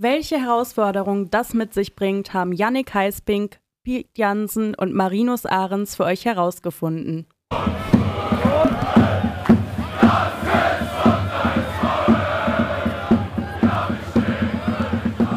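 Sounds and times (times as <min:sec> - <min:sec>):
speech: 0:00.0 - 0:08.0
huge stadium crowd of thousands roaring: 0:07.5 - 0:15.3.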